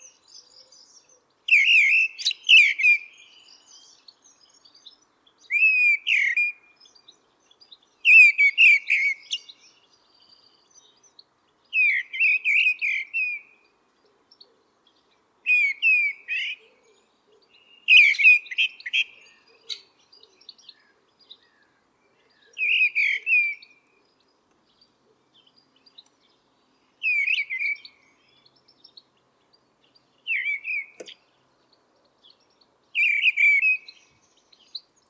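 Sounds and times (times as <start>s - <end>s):
mistle thrush: 0.0s - 35.0s.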